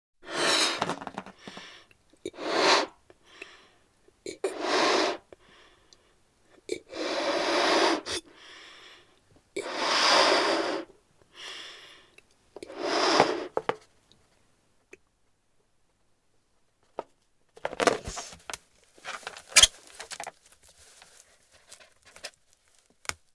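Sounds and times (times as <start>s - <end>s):
balloon being inflated: 0.2s - 1.7s, 2.3s - 3.0s, 4.5s - 5.3s, 6.9s - 8.3s, 9.6s - 10.9s, 12.6s - 13.7s.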